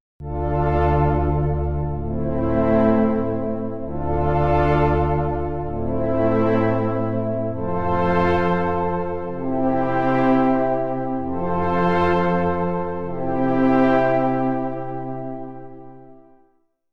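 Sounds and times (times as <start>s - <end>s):
synth pad: 0.2s - 16.3s.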